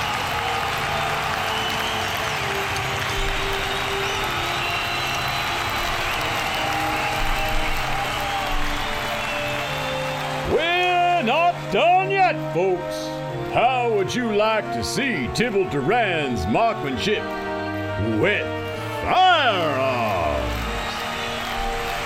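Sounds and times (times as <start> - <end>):
rising whistles from a circus crowd: 0.0 - 11.1, 19.1 - 22.0
large crowd applauding at a circus: 0.0 - 12.5, 17.2 - 22.0
speech: 11.7 - 17.4, 18.0 - 18.5, 19.1 - 19.9.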